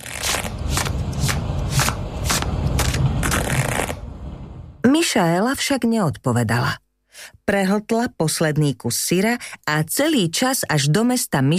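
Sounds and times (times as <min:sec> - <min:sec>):
playing cards being shuffled with a rapid riffling flutter: 0:00.0 - 0:04.0
speech: 0:05.1 - 0:11.5.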